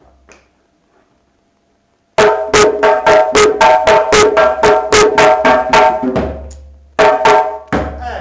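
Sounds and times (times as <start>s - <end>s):
slow solo drum break variation: 2.2s - 8.1s.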